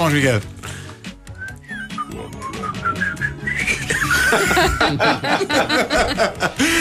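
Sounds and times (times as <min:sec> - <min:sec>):
speech: 0:00.1 - 0:00.8, 0:04.3 - 0:06.7
person whistling a lively series theme tune: 0:01.2 - 0:04.3
several people laughing and chuckling: 0:03.6 - 0:06.7.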